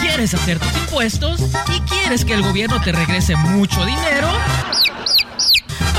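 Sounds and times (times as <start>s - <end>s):
speech: 0.2s - 4.7s
laughter: 3.8s - 5.9s
rooster crowing: 4.6s - 5.6s.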